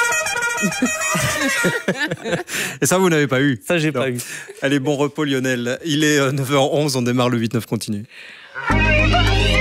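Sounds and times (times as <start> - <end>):
car horn honking: 0.0 - 2.0
laughter: 0.6 - 2.9
speech: 0.6 - 9.5.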